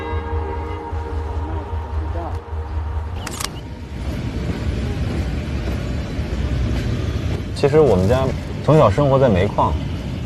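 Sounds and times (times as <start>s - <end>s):
train engine rumble with droning tone: 0.0s - 10.2s
train wheel clatter: 3.2s - 10.2s
speech: 7.6s - 9.9s.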